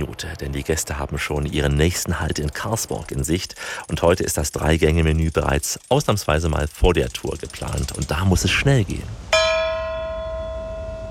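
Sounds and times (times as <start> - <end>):
speech: 0.2 - 9.3
bell struck to call tour passengers to dinner: 9.3 - 11.0.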